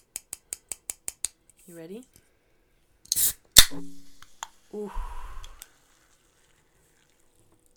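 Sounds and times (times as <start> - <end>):
speech: 1.7 - 2.2, 3.7 - 4.0, 4.7 - 5.2
can of sparkling water cracked open: 3.1 - 4.6
person exclaiming: 4.8 - 5.3
sparkling water fizzing: 4.9 - 7.7.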